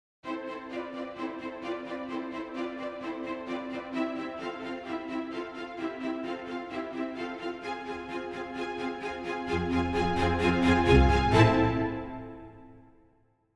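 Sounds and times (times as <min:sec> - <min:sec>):
full strings playing staccato: 0:00.3 - 0:12.7.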